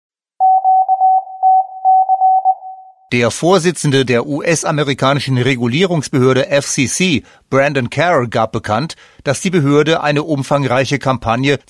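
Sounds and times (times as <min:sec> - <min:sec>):
mid-pitched Morse code tone beeps for gender asterisk: 0:00.4 - 0:03.0
speech: 0:03.1 - 0:11.6.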